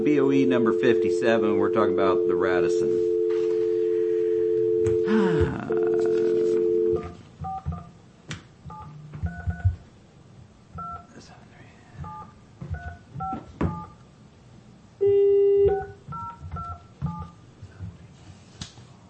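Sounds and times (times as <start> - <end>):
speech: 0.0 - 3.5, 5.1 - 5.9
faint room noise: 0.0 - 19.0
telephone ringback tone: 0.2 - 7.2
telephone dial tone: 0.4 - 7.2, 15.0 - 16.0.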